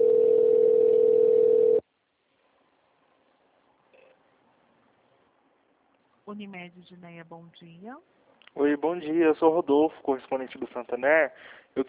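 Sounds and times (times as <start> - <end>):
telephone ringing tone while a call is transferred: 0.0 - 1.8
speech: 6.3 - 11.8.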